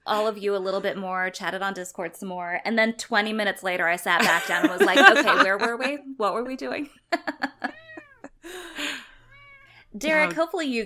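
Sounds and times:
speech: 0.1 - 7.5, 10.0 - 10.8
laughter: 4.2 - 6.0, 7.2 - 7.8
cat meowing: 7.7 - 8.3, 9.2 - 10.3.

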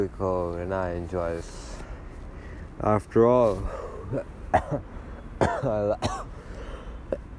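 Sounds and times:
speech: 0.0 - 1.7, 2.8 - 6.3
person with a lingering cold coughing: 4.5 - 4.8, 5.4 - 6.3.

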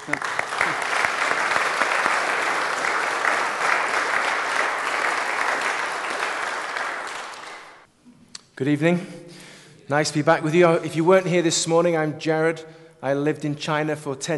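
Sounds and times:
audience applause of many hands clapping: 0.0 - 7.9
speech: 0.1 - 0.9, 8.6 - 9.2, 9.9 - 14.3.

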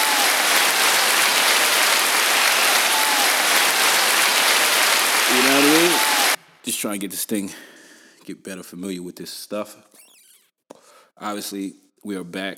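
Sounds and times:
crowd applause sound effect from a sound pad: 0.0 - 6.4
speech: 6.8 - 10.0, 11.2 - 12.5.

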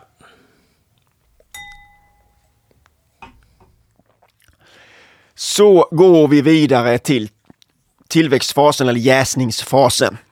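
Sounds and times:
glasses clinking in a cider toast: 1.4 - 3.8
quiet sipping and mouth noises: 3.3 - 4.8, 7.3 - 8.2
speech: 5.5 - 7.4, 8.1 - 10.2.

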